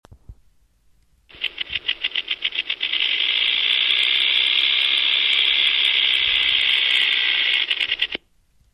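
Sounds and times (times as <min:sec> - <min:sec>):
rattlesnake rattling: 0:01.3 - 0:08.2.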